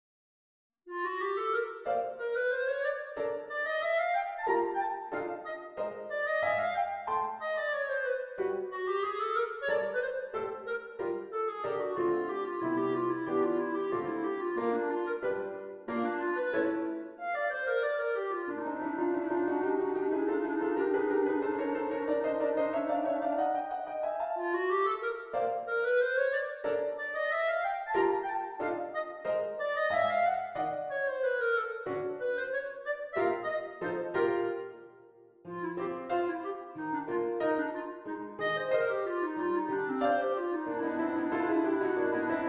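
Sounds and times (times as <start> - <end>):
clarinet: 0.9 - 42.4
piano: 0.9 - 42.4.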